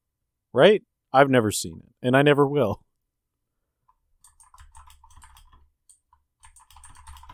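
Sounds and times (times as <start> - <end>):
speech: 0.5 - 2.8
rapid typing on a computer keyboard: 3.9 - 7.3.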